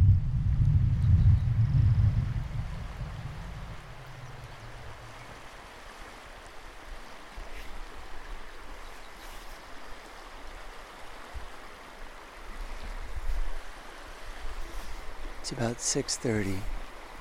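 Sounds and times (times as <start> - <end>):
low rumble: 0.0 - 5.4
river riffle rushing over shallows: 0.0 - 17.2
speech: 15.4 - 16.7.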